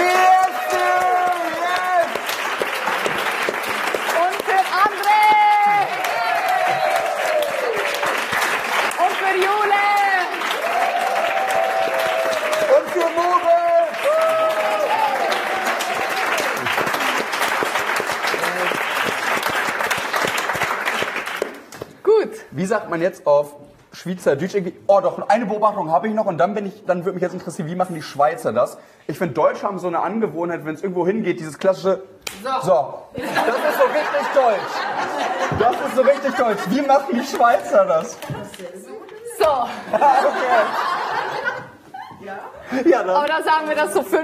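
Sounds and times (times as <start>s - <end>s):
scattered cheers and whoops: 0.0s - 2.2s, 5.0s - 8.3s, 9.8s - 17.2s
large audience applauding: 0.0s - 21.8s, 33.3s - 38.2s
speech: 22.9s - 40.9s, 42.2s - 44.2s
laughter: 33.2s - 37.8s, 39.5s - 43.2s.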